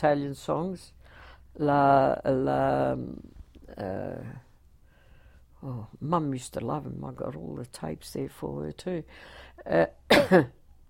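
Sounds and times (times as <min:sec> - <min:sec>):
speech: 0:00.0 - 0:01.0, 0:01.6 - 0:04.4, 0:05.6 - 0:10.6
person coughing: 0:10.1 - 0:10.6.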